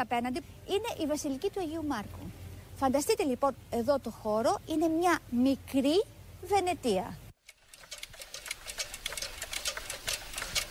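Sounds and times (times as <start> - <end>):
speech: 0.0 - 7.2
mechanical clock ticking: 7.4 - 10.6.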